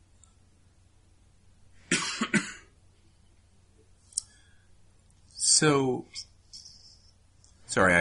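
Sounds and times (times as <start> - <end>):
harsh coughs: 1.9 - 2.7
speech: 5.6 - 6.3, 7.7 - 8.0.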